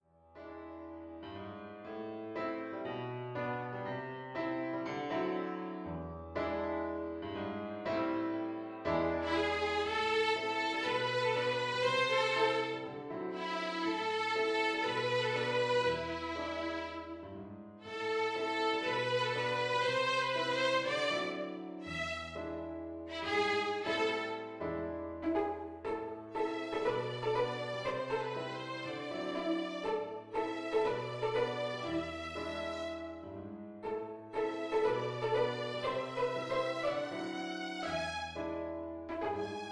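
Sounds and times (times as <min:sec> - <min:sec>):
piano accompaniment: 0:00.0 - 0:39.7
violin duet: 0:07.9 - 0:39.7.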